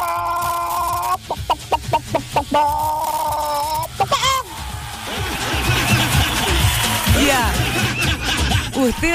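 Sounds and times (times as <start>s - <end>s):
person imitating a hen about to lay an egg, cackling and clucking: 0.0s - 4.4s
speech: 2.6s - 2.9s, 8.8s - 9.1s
laughter: 3.9s - 9.1s.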